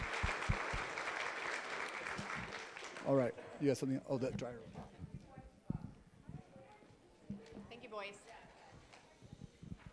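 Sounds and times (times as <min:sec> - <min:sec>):
audience clapping at an awards ceremony: 0:00.0 - 0:03.4
speech: 0:03.1 - 0:05.1, 0:07.9 - 0:08.5.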